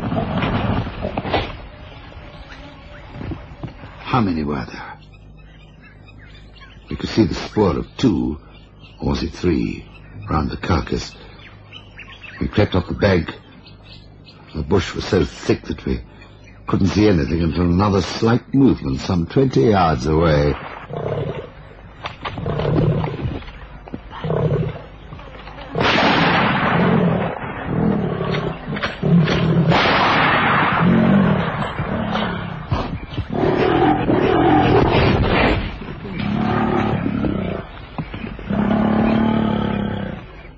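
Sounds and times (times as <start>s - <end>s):
lion growling and roaring in thick bush: 0.0s - 1.3s, 20.8s - 21.6s, 22.2s - 23.4s, 24.1s - 24.9s, 25.7s - 40.5s
speech: 4.2s - 4.9s, 6.9s - 11.2s, 12.4s - 13.4s, 14.5s - 16.1s, 16.7s - 21.2s.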